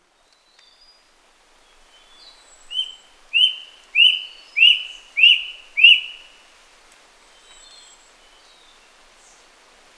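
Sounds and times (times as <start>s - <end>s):
rusty-breasted cuckoo plaintive whistles: 2.8s - 6.2s.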